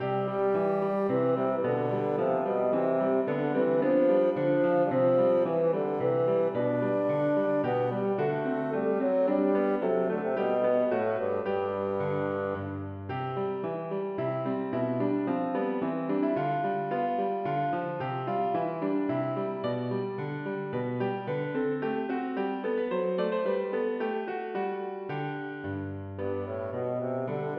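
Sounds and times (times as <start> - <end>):
bassoon playing a minuet: 0.0 - 13.0, 26.2 - 27.5
piano playing a minuet: 0.0 - 27.5.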